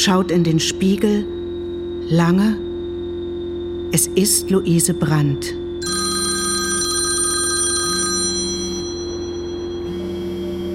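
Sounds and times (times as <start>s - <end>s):
speech: 0.0s - 1.4s, 2.1s - 2.7s, 3.9s - 6.0s
constant low hum: 0.0s - 10.7s
telephone ringing in a steady electronic pattern: 5.8s - 10.7s.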